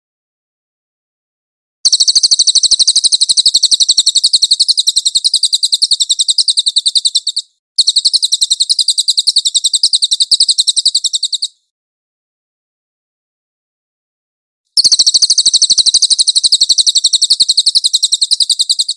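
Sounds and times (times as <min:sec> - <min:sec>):
bird song of high rattling chirps: 0:01.9 - 0:11.6, 0:14.8 - 0:18.9.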